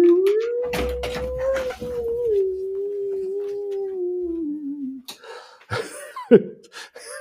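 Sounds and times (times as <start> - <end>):
wolf howling: 0.0 - 4.4.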